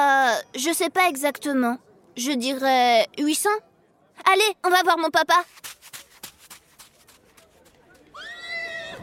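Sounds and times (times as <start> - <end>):
speech: 0.0 - 5.8
shuffling sounds in an echoey stable: 5.3 - 8.2
horse whinnying in an echoey stable: 8.2 - 9.0.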